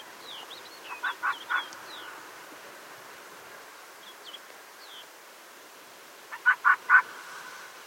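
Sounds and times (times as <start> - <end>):
Arctic fox barking: 6.3 - 7.1.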